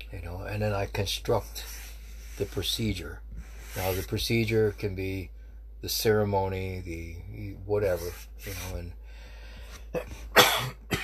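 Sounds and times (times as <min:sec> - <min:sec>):
speech: 0:00.1 - 0:01.8, 0:02.4 - 0:09.0, 0:09.9 - 0:11.0
raspy coughs: 0:09.9 - 0:11.0.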